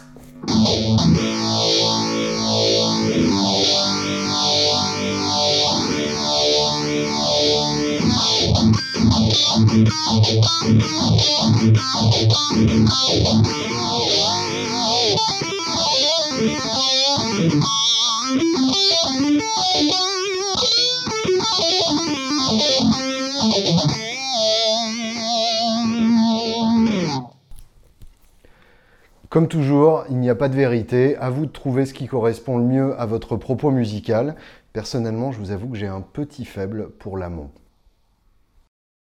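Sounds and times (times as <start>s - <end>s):
distorted electric guitar through a phaser playing chords and riffs: 0.0s - 27.4s
speech: 10.5s - 14.2s, 29.4s - 37.6s.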